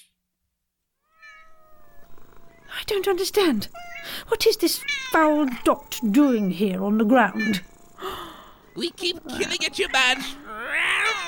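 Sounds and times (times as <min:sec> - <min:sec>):
cat meowing while chasing a beam of light: 0:01.0 - 0:02.8, 0:03.6 - 0:07.8, 0:09.4 - 0:11.2
faint low hum: 0:01.0 - 0:11.2
speech: 0:02.9 - 0:07.7, 0:08.8 - 0:10.4.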